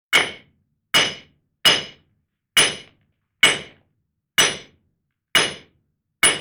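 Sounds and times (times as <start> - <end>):
hammer striking metal: 0.1 - 2.0, 2.6 - 3.8, 4.4 - 4.7, 5.4 - 6.3.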